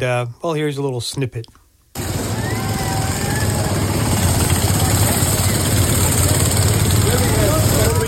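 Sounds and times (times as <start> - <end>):
speech: 0.0 - 2.1
indistinct voices: 2.0 - 8.0
small mini car engines droning and revving in a parade: 2.0 - 8.0.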